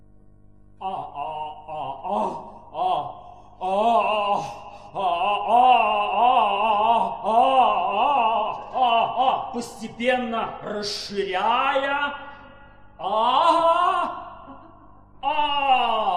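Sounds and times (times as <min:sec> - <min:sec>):
speech: 0:00.8 - 0:01.2, 0:09.6 - 0:12.2
person yawning with drawn-out voiced moan: 0:00.8 - 0:09.7, 0:12.2 - 0:16.1.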